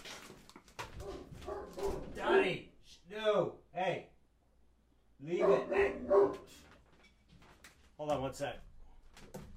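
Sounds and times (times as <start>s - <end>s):
dog barking: 1.0s - 2.4s, 5.3s - 6.6s
speech: 8.4s - 8.7s.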